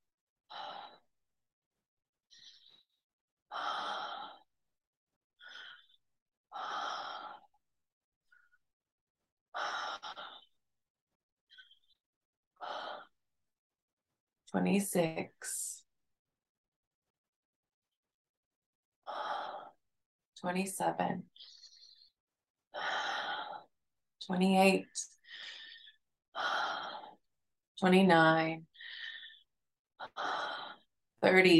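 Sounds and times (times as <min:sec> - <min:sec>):
deep breathing in and out during a guided breathing exercise: 0:00.4 - 0:01.2, 0:02.2 - 0:04.7, 0:05.4 - 0:07.7, 0:09.5 - 0:10.7, 0:12.6 - 0:13.2, 0:19.0 - 0:20.0, 0:21.2 - 0:23.8, 0:25.1 - 0:27.3, 0:28.6 - 0:31.0
speech: 0:14.5 - 0:15.7, 0:20.4 - 0:21.6, 0:24.3 - 0:25.5, 0:27.8 - 0:28.7, 0:31.2 - 0:31.5.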